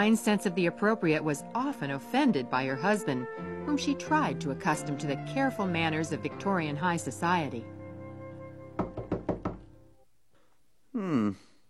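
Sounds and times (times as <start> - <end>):
speech: 0.0 - 7.8, 11.0 - 11.5
knocking on a door: 8.8 - 9.6
person murmuring or sighing: 10.9 - 11.6.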